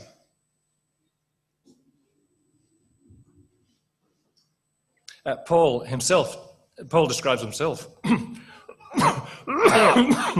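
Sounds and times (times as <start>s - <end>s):
speech: 5.2s - 8.4s, 9.5s - 10.3s
person coughing: 8.0s - 10.3s.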